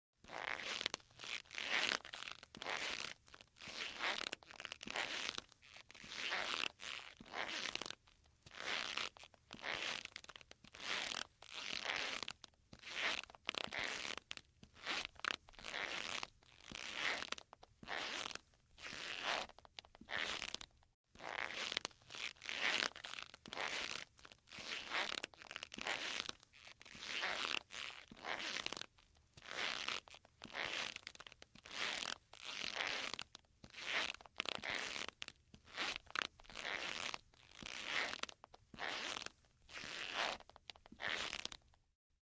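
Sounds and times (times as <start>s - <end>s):
leather shoes squeaking: 0.2s - 7.9s, 8.5s - 28.8s, 29.4s - 41.7s.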